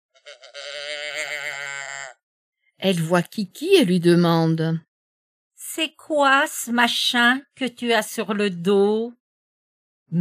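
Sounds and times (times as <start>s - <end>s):
sheep bleating: 0.1s - 2.2s
speech: 2.8s - 4.9s, 5.8s - 9.2s.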